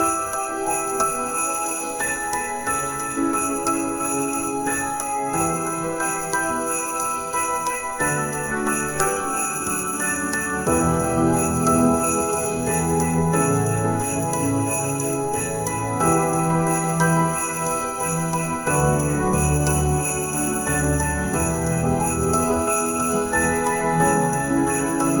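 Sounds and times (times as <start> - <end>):
jingle bells snow bells: 0.0 - 25.1
soft piano: 0.0 - 25.1.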